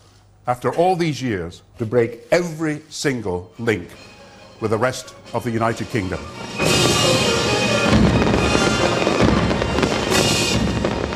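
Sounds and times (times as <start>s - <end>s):
speech: 0.5s - 7.3s
fireworks exploding over Edinburgh, Scotland at the close of the annual festival: 6.5s - 11.1s.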